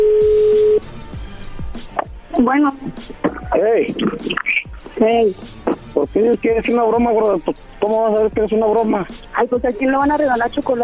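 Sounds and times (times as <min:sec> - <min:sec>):
telephone call ring tone: 0:00.0 - 0:00.8
speech: 0:02.4 - 0:10.8.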